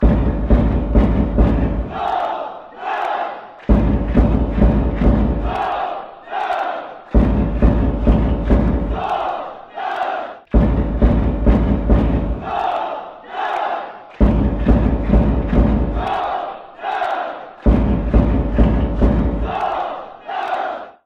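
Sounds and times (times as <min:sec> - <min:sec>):
drums: 0:00.0 - 0:02.2, 0:03.7 - 0:05.8, 0:07.1 - 0:09.2, 0:10.5 - 0:12.7, 0:14.2 - 0:16.3, 0:17.6 - 0:19.8
football fans chanting: 0:00.0 - 0:21.0.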